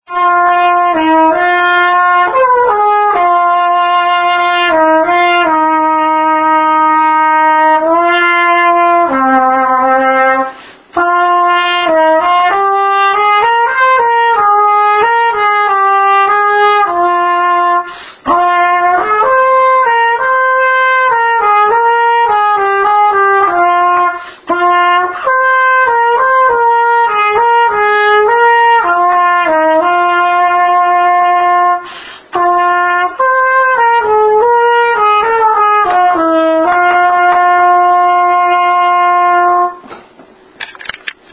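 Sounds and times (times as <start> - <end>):
trumpet: 0.0 - 40.0.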